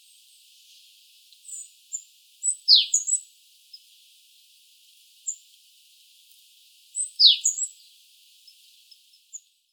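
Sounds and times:
Eurasian blue tit (Cyanistes caeruleus) calls: 0:07.2 - 0:07.7.

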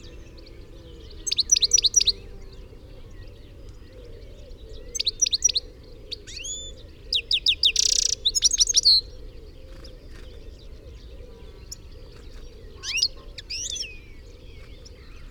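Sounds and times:
European goldfinch twittering calls: 0:00.0 - 0:15.2.

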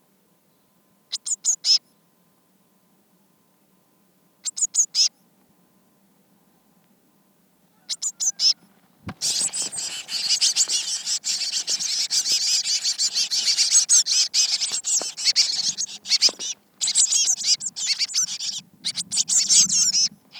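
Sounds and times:
Eurasian blue tit Cyanistes caeruleus chattering: 0:04.5 - 0:05.1, 0:09.2 - 0:20.3.

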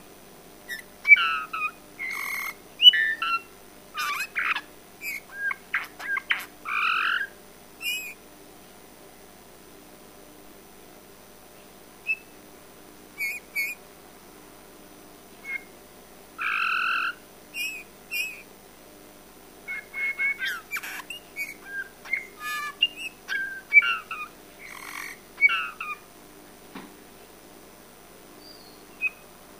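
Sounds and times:
Eurasian bullfinch Pyrrhula pyrrhula call notes, soft piping whistles: 0:00.7 - 0:08.2, 0:12.0 - 0:12.3, 0:13.2 - 0:13.8, 0:16.4 - 0:18.4, 0:19.7 - 0:26.0, 0:28.4 - 0:29.3.

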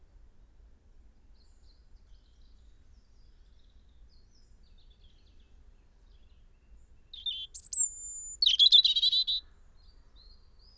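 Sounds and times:
European robin song, Erithacus rubecula: 0:07.2 - 0:09.4.

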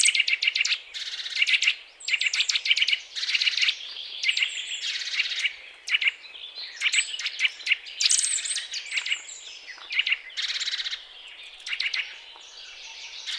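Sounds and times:
Eurasian nuthatch Sitta europaea calls: 0:00.0 - 0:06.2, 0:06.8 - 0:13.3
overlapping high chirps and trills: 0:00.0 - 0:13.3.

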